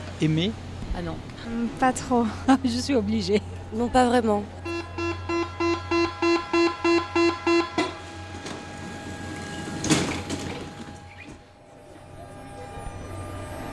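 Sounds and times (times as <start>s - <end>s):
metro carriage hum and rumble: 0.0s - 13.7s
speech: 0.2s - 4.7s
metro carriage sliding door thudding shut: 7.8s - 11.4s.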